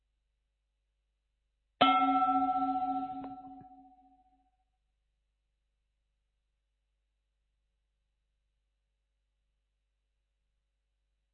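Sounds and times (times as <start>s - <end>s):
meditation bell struck and ringing: 1.8s - 4.1s.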